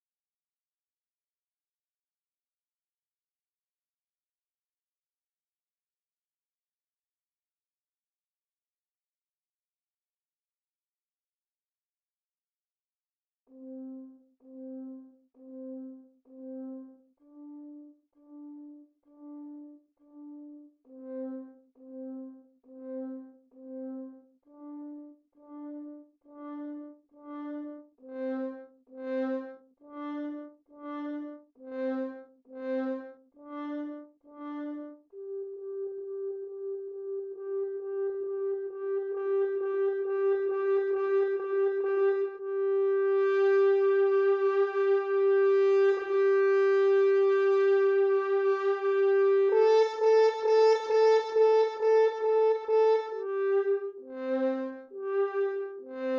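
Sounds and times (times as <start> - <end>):
horn: 13.5 - 56.1.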